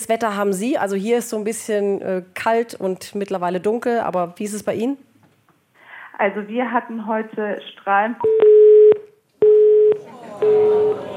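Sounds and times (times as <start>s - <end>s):
speech: 0.0s - 5.1s, 6.2s - 8.5s, 10.4s - 11.1s
telephone busy tone after a dropped call: 8.2s - 11.1s.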